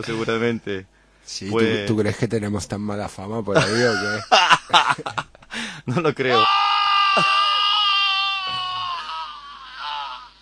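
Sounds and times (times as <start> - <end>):
speech: 0.0 - 7.4
laughter: 3.6 - 5.4
loud shrill screaming: 6.3 - 10.3.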